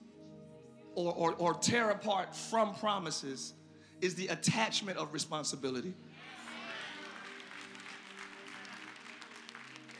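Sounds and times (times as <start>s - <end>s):
speech: 1.0s - 6.4s
audience applause: 6.4s - 9.9s.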